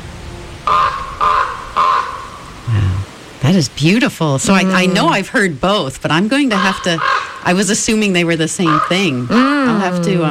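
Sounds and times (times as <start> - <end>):
lone raven giving harsh rasping caws: 0.6 - 2.5, 6.5 - 7.6, 8.6 - 9.4
speech: 3.5 - 10.2.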